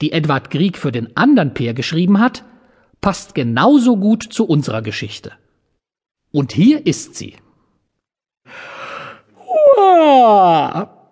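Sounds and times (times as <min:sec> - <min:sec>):
speech: 0:00.0 - 0:05.4, 0:06.3 - 0:07.4, 0:09.8 - 0:11.0
person yawning loudly while stretching: 0:08.5 - 0:11.1.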